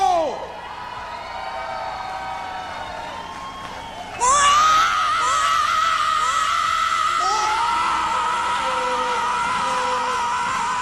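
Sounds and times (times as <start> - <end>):
huge outdoor festival crowd in America roaring and whistling: 0.0 - 10.7
amplified yell from an Italian singer at a 1994 festival: 4.2 - 10.7.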